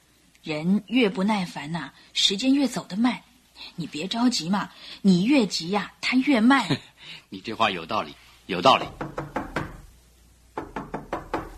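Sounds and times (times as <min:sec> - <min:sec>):
speech: 0:00.4 - 0:09.3
knocking on a wooden door: 0:08.7 - 0:09.9, 0:10.6 - 0:11.5.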